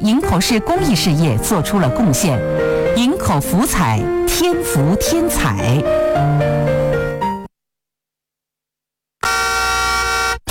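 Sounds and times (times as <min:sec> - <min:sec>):
speech: 0:00.0 - 0:07.0
car horns honking in traffic: 0:09.2 - 0:10.4.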